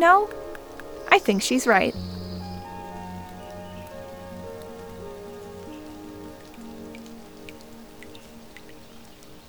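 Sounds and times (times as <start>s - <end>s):
speech: 0.0s - 0.4s, 1.1s - 2.2s
low tonal hum: 0.0s - 9.4s
heavy rain pouring onto a hard surface: 2.0s - 9.4s.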